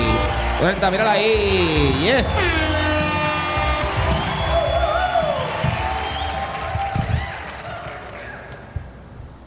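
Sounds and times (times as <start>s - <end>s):
live audience applause: 0.0s - 8.7s
speech: 0.6s - 2.8s.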